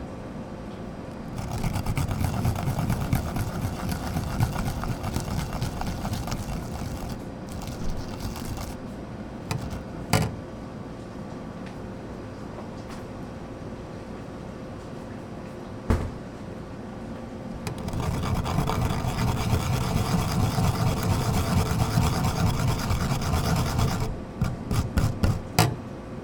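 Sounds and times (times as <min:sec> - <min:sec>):
wasabi being grated: 0:01.1 - 0:08.9, 0:09.5 - 0:10.3, 0:17.7 - 0:25.7.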